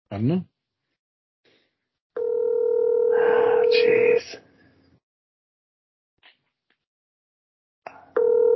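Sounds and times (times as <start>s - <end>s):
speech: 0.1s - 0.5s, 3.7s - 4.4s
outgoing phone call ringback tone: 2.2s - 3.8s, 8.2s - 8.5s
person muttering: 3.2s - 4.4s.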